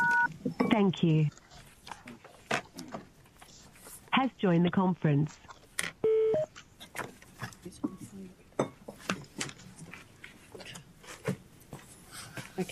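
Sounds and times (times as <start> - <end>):
telephone keypad DTMF tone: 0.0 - 0.3, 6.0 - 6.5
speech: 0.8 - 1.4, 4.2 - 5.5.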